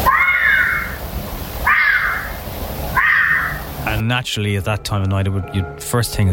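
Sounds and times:
owl screeching at night: 0.0s - 1.0s, 1.6s - 3.7s
speech: 4.0s - 6.3s.

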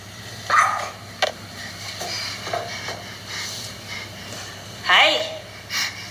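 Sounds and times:
dog yelping and squealing: 0.5s - 1.0s.

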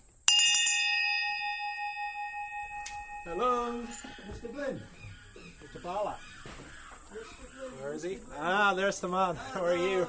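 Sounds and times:
hand bell being shaken and ringing: 0.3s - 4.2s
speech: 3.2s - 5.0s, 5.6s - 10.0s.

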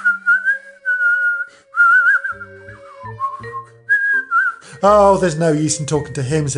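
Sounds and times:
footman whistling a short wandering tune: 0.0s - 4.9s
speech: 4.8s - 6.5s.

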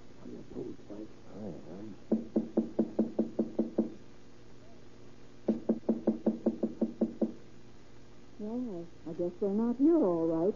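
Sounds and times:
speech: 0.4s - 2.2s, 8.6s - 10.5s
knocking on an apartment door: 2.1s - 4.0s, 5.5s - 7.4s.

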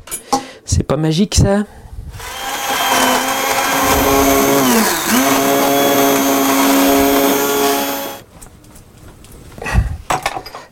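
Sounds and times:
speech: 0.7s - 1.8s
immersion blender mixing an orange sauce: 2.2s - 8.2s.

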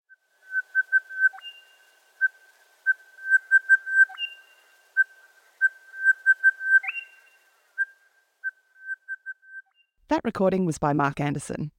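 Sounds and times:
crested bellbird calling in ringing whistled notes: 0.4s - 9.8s
speech: 10.1s - 11.7s.

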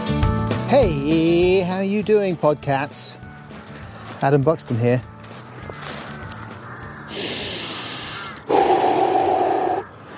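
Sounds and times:
speech: 0.7s - 3.2s, 4.2s - 5.1s
deep breath of fresh evening air outdoors on a high countryside vantage point: 7.1s - 10.1s.

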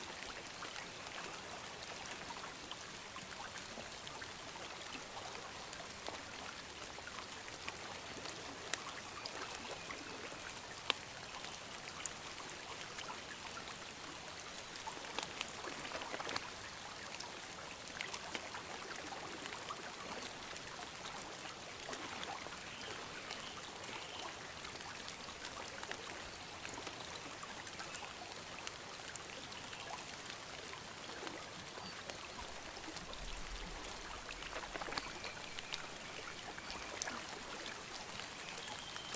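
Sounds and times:
gentle rain falling on a pond in fine drops: 0.0s - 39.1s
sharper individual splashes on a pond: 0.0s - 39.1s.

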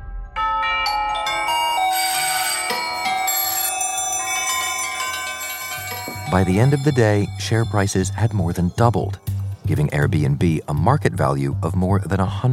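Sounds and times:
many doorbells ringing with overlapping chimes: 0.4s - 9.8s
speech: 6.3s - 12.5s.

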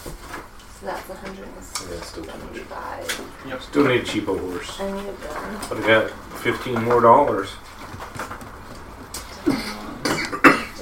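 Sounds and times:
speech: 0.8s - 7.7s
person coughing and choking while drinking: 9.4s - 10.7s.

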